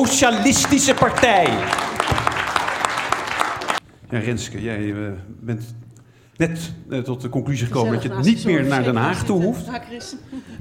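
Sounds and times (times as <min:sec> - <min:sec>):
speech: 0:00.0 - 0:02.2, 0:04.1 - 0:05.8, 0:06.4 - 0:10.6
audience applauding to welcome a politician: 0:00.0 - 0:03.8.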